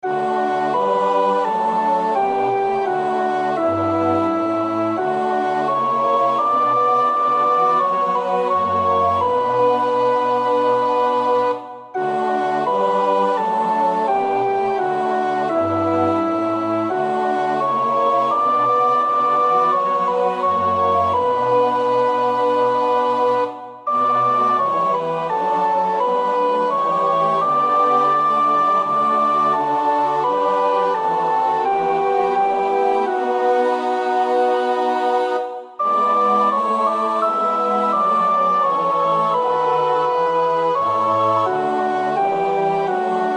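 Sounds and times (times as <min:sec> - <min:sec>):
soprano choir voices singing a chorale: 0:00.0 - 0:43.3.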